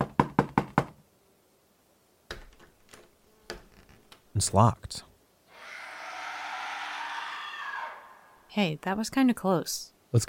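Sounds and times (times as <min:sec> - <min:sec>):
knocking on a door: 0:00.0 - 0:01.0
speech: 0:04.4 - 0:05.1, 0:08.6 - 0:10.2.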